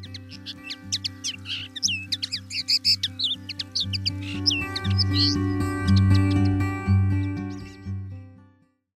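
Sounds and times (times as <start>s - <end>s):
Common linnet song: 0.0s - 8.2s.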